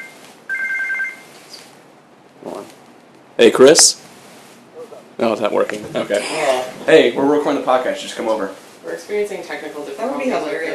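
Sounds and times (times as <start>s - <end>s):
telephone ringing with an incoming call: 0.0s - 1.3s
faint noise: 0.0s - 10.7s
speech: 3.4s - 4.0s, 5.2s - 10.7s.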